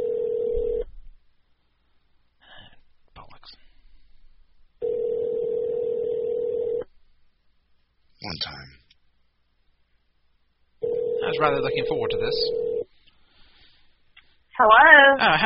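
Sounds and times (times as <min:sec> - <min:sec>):
phone line's ringing tone: 0:00.0 - 0:00.9, 0:04.8 - 0:06.9, 0:10.8 - 0:12.9
speech: 0:11.3 - 0:12.6, 0:14.6 - 0:15.4.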